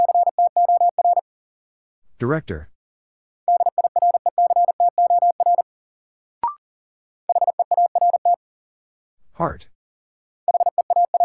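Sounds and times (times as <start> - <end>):
rapid Morse code beeps in a word drill: 0.0 - 1.2, 3.5 - 5.6, 7.3 - 8.4, 10.5 - 11.2
speech: 2.2 - 2.7, 9.4 - 9.7.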